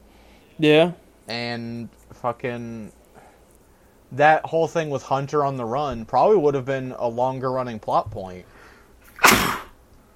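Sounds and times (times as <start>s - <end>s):
speech: 0.6s - 3.0s, 4.1s - 8.5s
person sneezing: 9.1s - 9.8s.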